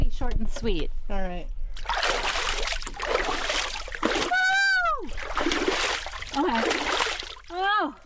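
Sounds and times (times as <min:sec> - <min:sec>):
speech: 0:00.4 - 0:02.2
ice water splashing on face and hands: 0:01.8 - 0:07.7.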